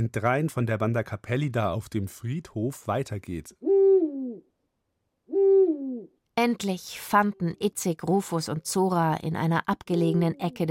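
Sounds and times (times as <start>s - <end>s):
speech: 0.0s - 3.7s, 6.4s - 10.6s
owl hooting: 3.6s - 4.5s, 5.3s - 6.2s.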